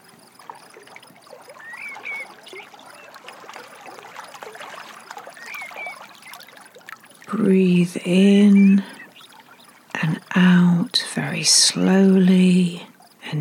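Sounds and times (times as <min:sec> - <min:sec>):
water gently lapping and trickling: 0:00.0 - 0:13.3
faint bird chirps: 0:00.3 - 0:10.5
speech: 0:07.3 - 0:09.0, 0:11.4 - 0:13.3.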